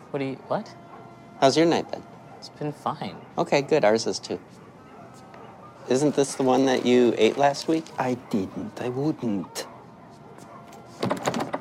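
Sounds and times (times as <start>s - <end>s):
speech: 0.1s - 4.6s, 5.9s - 9.7s
door handle jiggled and rattled on a locked door: 11.0s - 11.6s.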